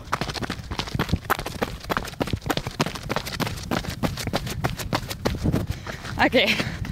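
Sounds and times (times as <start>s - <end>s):
running footsteps of a person sprinting: 0.0s - 6.9s
heavy breathing: 5.6s - 6.9s
speech: 6.2s - 6.8s.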